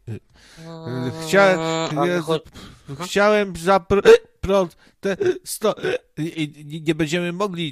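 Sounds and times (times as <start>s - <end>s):
person imitating hiccups: 0.6s - 3.1s, 4.0s - 4.3s, 5.1s - 6.2s
sing-song vocal sounds: 0.6s - 3.1s
speech: 1.3s - 7.7s.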